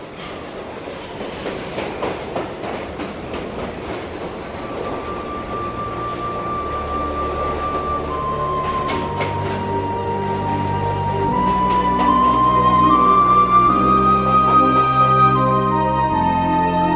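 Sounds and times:
train rattling along with rhythmic clacking: 0:00.0 - 0:16.8
train brakes letting out a long steady metallic squeal: 0:04.0 - 0:07.1.

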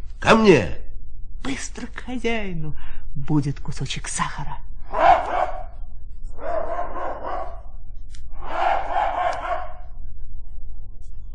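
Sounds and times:
low hum: 0:00.0 - 0:11.3
speech: 0:00.3 - 0:00.8, 0:01.4 - 0:05.2
hunting dog barking: 0:04.9 - 0:05.8, 0:06.4 - 0:07.7, 0:08.4 - 0:09.9.

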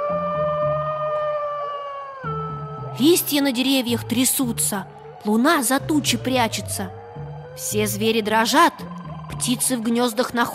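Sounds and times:
wolf howling: 0:00.0 - 0:05.3
speech: 0:00.1 - 0:00.4, 0:03.0 - 0:07.0, 0:07.6 - 0:10.5.

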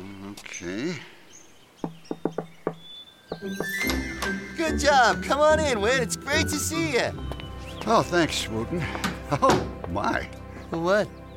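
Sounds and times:
faint bird chirps: 0:00.0 - 0:03.8
speech: 0:00.4 - 0:01.2, 0:03.4 - 0:11.2
secret knock on a wooden door: 0:01.8 - 0:03.5.

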